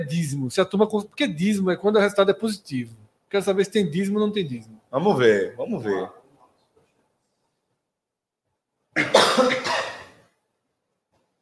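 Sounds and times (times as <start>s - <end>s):
speech: 0.0s - 6.2s
people coughing together: 9.0s - 10.2s.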